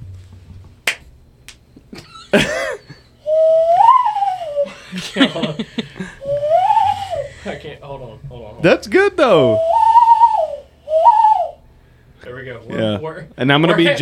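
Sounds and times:
people laughing and giggling: 1.9s - 3.2s, 4.7s - 7.6s
low hollow whistle blown through cupped hands: 3.2s - 4.7s, 6.2s - 7.3s, 9.2s - 11.6s
speech: 5.2s - 6.1s, 8.0s - 9.7s, 12.9s - 13.9s.

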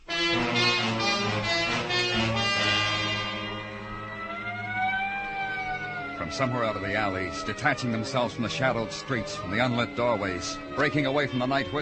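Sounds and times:
ambulance siren wailing: 0.1s - 11.8s
speech: 6.4s - 11.8s.

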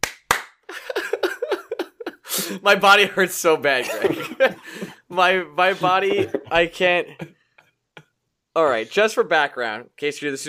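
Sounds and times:
sharp hand claps: 0.0s - 0.7s
laughter: 0.7s - 2.7s, 3.8s - 5.0s, 5.6s - 7.3s
speech: 2.5s - 7.3s, 8.6s - 10.4s.

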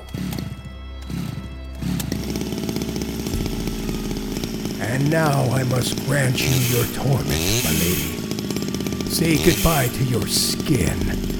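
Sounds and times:
chainsaw engine revving: 0.0s - 11.3s
speech: 5.0s - 8.2s, 9.1s - 11.3s.

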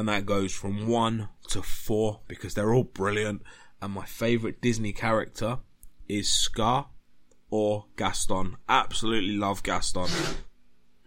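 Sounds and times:
speech: 0.0s - 6.9s, 7.5s - 10.5s
dog sneezing: 10.0s - 10.5s.

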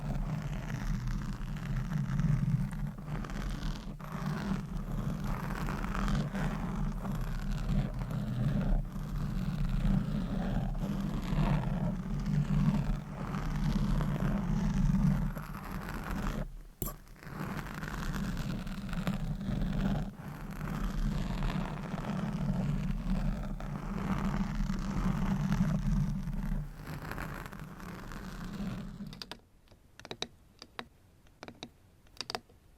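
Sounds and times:
nails scratching and tapping on objects: 0.0s - 29.4s.

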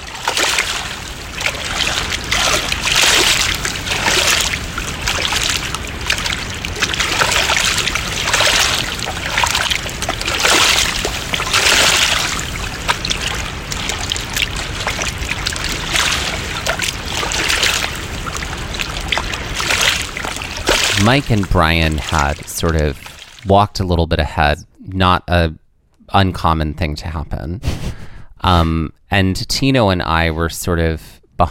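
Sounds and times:
rushing river water with splashing and trickling: 0.0s - 23.5s
speech: 21.1s - 27.8s, 28.4s - 31.4s.

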